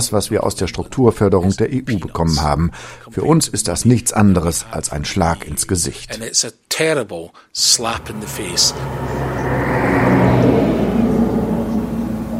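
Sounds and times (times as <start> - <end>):
speech: 0.0 - 9.6
lorry carrying new cars passing by: 8.0 - 12.3.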